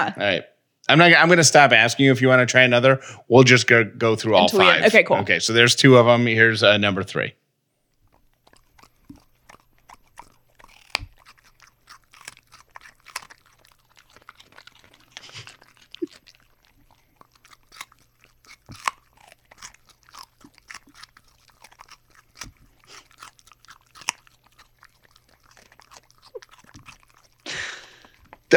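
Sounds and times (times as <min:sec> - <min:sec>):
speech: 0:00.0 - 0:07.4
dog crunching and chewing raw carrots: 0:07.8 - 0:28.5.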